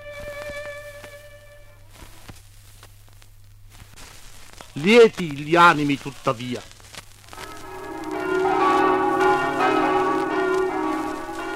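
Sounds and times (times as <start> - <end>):
speech: 4.8 - 6.7
church bells ringing in a peal: 7.4 - 11.5.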